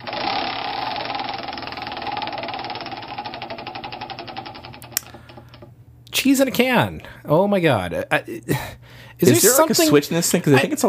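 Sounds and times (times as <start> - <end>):
spinning prize wheel rattling ticking sound effect: 0.0 - 5.5
speech: 6.2 - 10.8.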